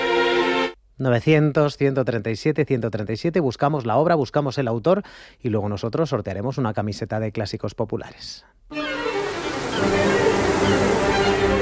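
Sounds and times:
speech: 1.0s - 8.8s
ocean waves roaring: 8.7s - 11.6s.

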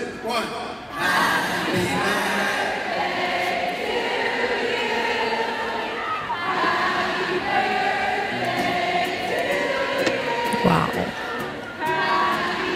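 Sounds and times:
speech: 0.3s - 0.7s
huge arena crowd singing a birthday song: 0.8s - 12.7s.

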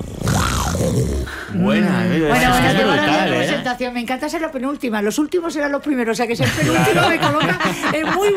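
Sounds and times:
person imitating a roar with their voice: 0.0s - 2.2s
speech: 1.0s - 8.3s
laughter: 2.2s - 3.8s, 6.4s - 8.3s.

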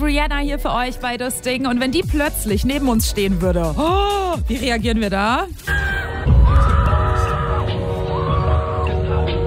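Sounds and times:
speech: 0.1s - 6.8s
excited screaming: 5.7s - 9.3s.

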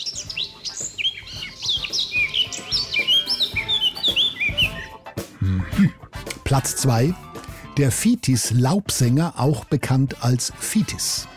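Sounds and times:
Eurasian blackcap singing a fluting warble: 0.0s - 5.1s
soft outdoor background: 0.0s - 11.3s
speech: 6.5s - 11.3s.

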